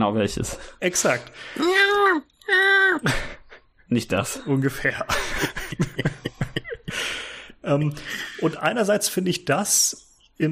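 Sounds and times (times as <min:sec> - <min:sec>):
speech: 0:00.0 - 0:03.3, 0:03.9 - 0:06.2, 0:07.7 - 0:10.5
voice imitating a short baby cry: 0:01.6 - 0:03.1
laughter: 0:04.6 - 0:08.6.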